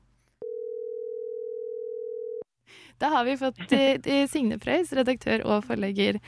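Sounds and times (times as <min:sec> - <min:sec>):
telephone dial tone while a phone call is placed: 0:00.4 - 0:02.4
speech: 0:02.7 - 0:06.2.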